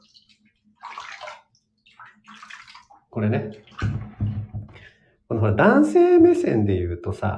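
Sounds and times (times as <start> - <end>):
water running into a bathtub: 0.0 - 4.9
speech: 3.2 - 4.0, 5.4 - 7.3.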